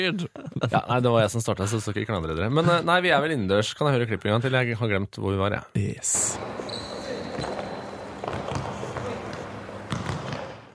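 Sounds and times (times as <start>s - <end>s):
speech: 0.0s - 6.8s
busy noise: 6.2s - 10.7s
ball bouncing during a sports training session: 6.4s - 10.7s.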